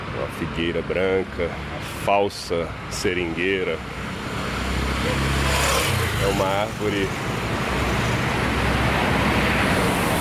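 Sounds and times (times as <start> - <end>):
roar of heavy traffic on Padre Eustáquio street: 0.0 - 10.2
speech: 0.3 - 4.1, 6.2 - 7.4
bus engine rumble passing on busy Padre Eustáquio street: 2.7 - 10.2.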